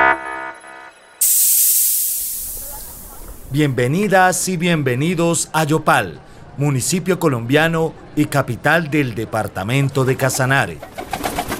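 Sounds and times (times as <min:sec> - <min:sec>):
hatches opening with a hiss after an aircraft landing: 0:01.2 - 0:03.6
speech: 0:03.5 - 0:10.9.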